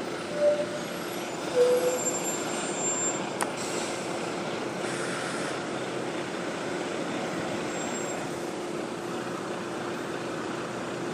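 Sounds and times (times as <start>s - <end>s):
bus rumbling as it pulls away and turns left: 0.0s - 11.1s
brief tonal whines: 0.3s - 2.4s
bus air brakes hissing: 0.3s - 4.2s, 4.8s - 5.6s.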